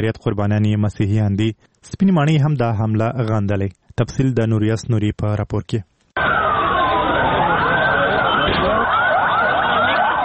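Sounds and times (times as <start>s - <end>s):
speech: 0.0s - 6.3s
dense noise: 0.0s - 10.2s
ambulance sirens wailing after a bomb blast in Lahore: 6.2s - 10.2s.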